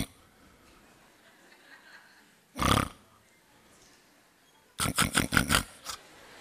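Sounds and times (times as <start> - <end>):
laughter: 1.0 - 2.4
person loudly imitating snoring: 2.6 - 3.0, 4.8 - 6.0.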